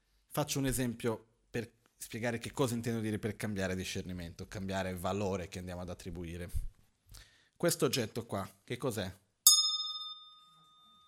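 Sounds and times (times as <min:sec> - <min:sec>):
speech: 0:00.4 - 0:09.2
small hand bell ringing: 0:09.5 - 0:11.0.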